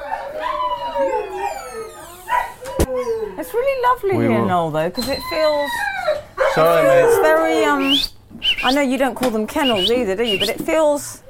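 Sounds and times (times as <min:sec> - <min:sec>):
dogs barking in a veterinary ward: 0:00.0 - 0:03.7, 0:05.3 - 0:07.9
several dogs howling in a veterinary ward: 0:00.0 - 0:08.0
speech: 0:03.5 - 0:11.2.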